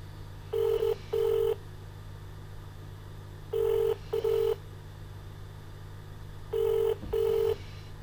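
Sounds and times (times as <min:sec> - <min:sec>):
steady low hum: 0:00.0 - 0:08.0
telephone ringback tone in double bursts: 0:00.6 - 0:01.6, 0:03.6 - 0:04.6, 0:06.5 - 0:07.6.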